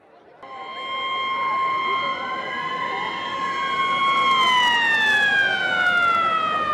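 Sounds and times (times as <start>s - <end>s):
siren wails of a motorcycle group starting a street parade: 0.4s - 6.7s.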